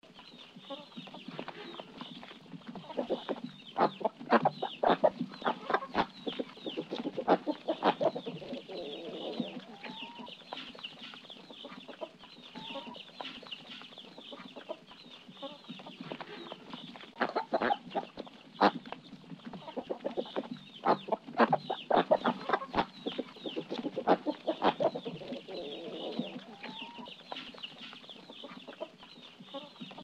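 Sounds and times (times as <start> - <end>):
farm chicks: 0.0 - 30.0
farm ducks: 0.0 - 30.0.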